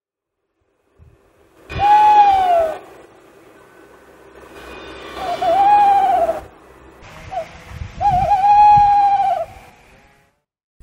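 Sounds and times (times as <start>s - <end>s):
tawny owl hooting: 1.7s - 2.9s, 5.2s - 6.6s, 7.3s - 9.6s.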